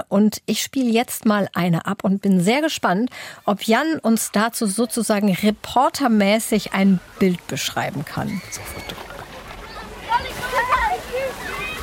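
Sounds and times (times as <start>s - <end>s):
speech: 0.1s - 9.1s
water sloshing and splashing at a swimming pool: 3.8s - 11.8s
children shouting at a swimming pool: 8.3s - 11.8s.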